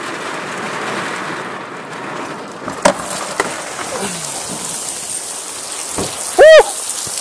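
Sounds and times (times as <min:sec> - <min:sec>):
heavy rain pouring outdoors in Florida: 0:00.0 - 0:07.2
sharper splashes and knocks: 0:02.6 - 0:07.2
short loud vocal whoop: 0:03.9 - 0:04.4, 0:06.4 - 0:06.9.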